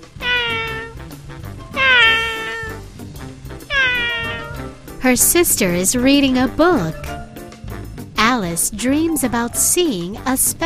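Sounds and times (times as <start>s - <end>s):
cat meowing in a tree at a park: 0.0s - 1.0s, 1.7s - 2.8s, 3.6s - 4.8s
speech: 5.0s - 7.1s, 8.6s - 10.6s.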